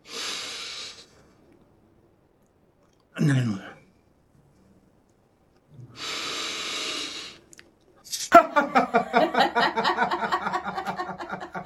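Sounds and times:
breathing in through the nose: 0.0s - 1.4s, 5.9s - 7.5s
speech: 3.2s - 3.7s
laughter: 8.3s - 11.6s.

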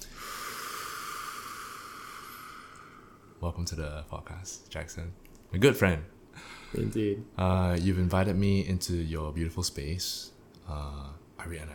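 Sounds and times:
long deep breath at the start of a podcast: 0.0s - 3.4s, 6.3s - 6.9s
speech: 3.4s - 11.7s.

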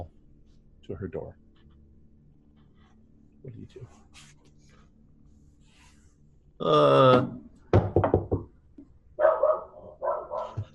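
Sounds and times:
speech: 0.9s - 1.4s, 3.4s - 4.3s, 6.6s - 7.5s
dogs barking in a room across a hall: 9.2s - 10.7s.

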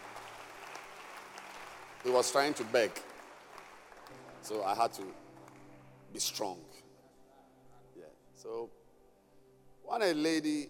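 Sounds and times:
audience clapping: 0.0s - 6.4s
speech: 2.0s - 3.1s, 4.4s - 5.2s, 6.1s - 6.8s, 8.0s - 8.8s, 9.8s - 10.6s.

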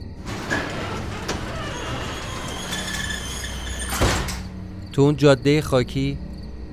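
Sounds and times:
large sliding warehouse door rumbling open: 0.0s - 4.6s
metallic clunk of sliding door: 0.2s - 4.6s
speech: 5.0s - 6.3s.

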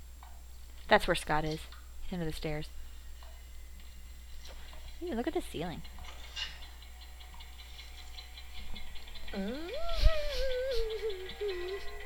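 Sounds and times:
speech: 0.9s - 2.8s, 5.0s - 6.5s, 9.3s - 10.1s
clock ticking: 4.7s - 12.0s
swooping wavering tonal sound: 6.8s - 12.0s.

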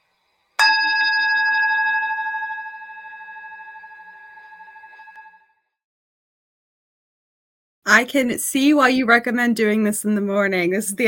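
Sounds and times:
meditation gong ringing: 0.6s - 5.4s
speech: 7.9s - 11.0s.

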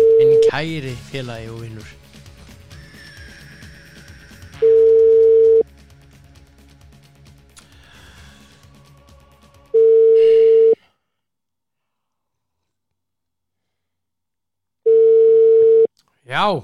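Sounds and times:
telephone ringing tone during an outgoing call: 0.0s - 0.5s, 4.6s - 5.6s, 9.8s - 10.8s, 14.9s - 15.9s
speech: 0.5s - 2.1s, 16.3s - 16.6s.

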